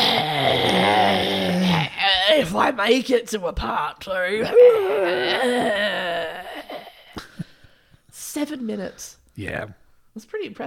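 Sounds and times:
raspy wheezing coyote growl: 0.0s - 2.5s, 4.4s - 7.2s
speech: 2.5s - 6.4s, 8.2s - 10.6s.

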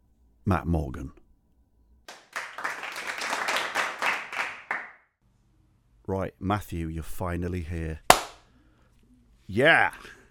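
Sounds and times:
speech: 0.5s - 1.2s, 6.1s - 8.1s, 9.5s - 10.2s
light courtesy applause from a small group: 2.1s - 5.0s.

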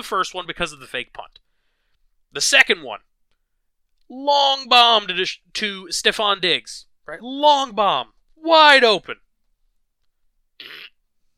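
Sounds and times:
speech: 0.0s - 1.4s, 2.3s - 3.1s, 4.1s - 9.2s
fart: 10.6s - 11.0s.

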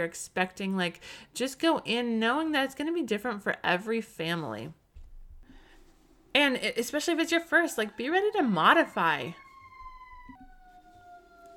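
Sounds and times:
speech: 0.0s - 4.8s, 6.4s - 9.4s
emergency vehicle siren wailing: 6.6s - 11.5s.

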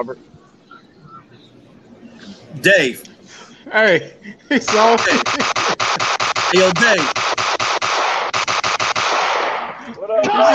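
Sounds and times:
speech: 0.0s - 0.4s, 2.2s - 5.6s, 6.5s - 7.3s, 10.1s - 10.5s
laughter: 1.0s - 7.1s
gunshot sound effect barrage of rapid shots: 4.7s - 9.7s.

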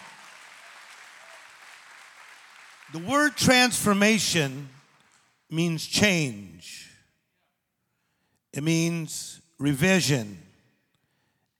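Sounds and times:
audience applause: 0.0s - 5.3s
speech: 2.9s - 4.8s, 5.5s - 6.9s, 8.5s - 10.5s.

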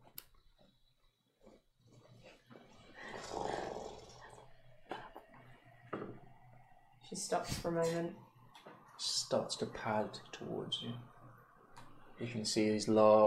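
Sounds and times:
deep low growl of a large tusked creature: 2.9s - 4.5s
speech: 7.1s - 8.3s, 9.0s - 11.1s, 12.2s - 13.2s.

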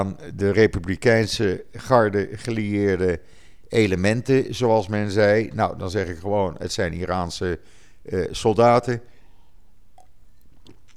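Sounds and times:
speech: 0.0s - 9.1s
person taking a quick sip of water: 9.1s - 10.9s
soft wet mouth clicks: 9.9s - 10.9s.

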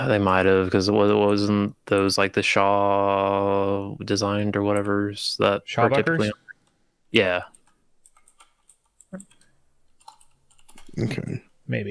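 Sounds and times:
speech: 0.0s - 6.4s, 7.1s - 7.6s, 11.0s - 11.8s
typing on a computer keyboard: 7.5s - 11.0s.

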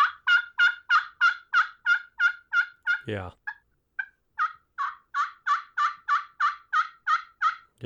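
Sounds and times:
gobbler yelps on a hand-held turkey call: 0.0s - 7.7s
speech: 3.1s - 3.4s.

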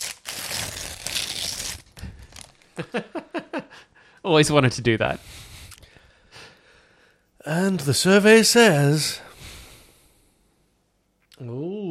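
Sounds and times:
paper envelope being torn open: 0.0s - 2.6s
speech: 2.8s - 3.2s, 4.2s - 5.4s, 7.4s - 9.3s.

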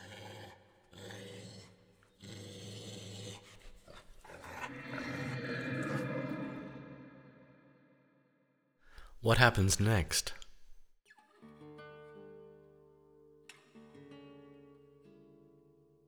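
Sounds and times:
dog growling and snarling: 0.0s - 7.5s
speech: 9.3s - 10.4s.

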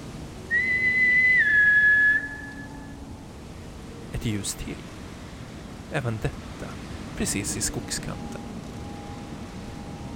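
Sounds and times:
whistle from across a meadow: 0.5s - 3.0s
speech: 4.2s - 5.0s, 5.9s - 8.4s.

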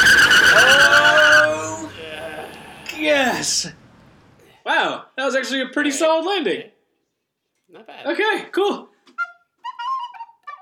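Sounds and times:
car tires screeching as car brakes hard: 0.0s - 3.6s
speech: 3.5s - 3.8s, 4.7s - 6.7s, 7.7s - 8.9s.

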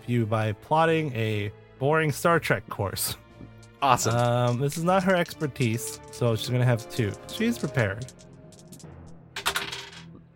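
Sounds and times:
speech: 0.1s - 3.2s, 3.8s - 8.3s
two dice tumbling across a hard tabletop during a game: 3.6s - 10.1s.

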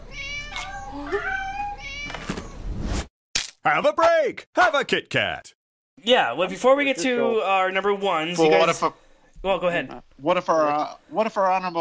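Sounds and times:
cats meowing: 0.0s - 2.6s
speech: 3.6s - 11.7s.

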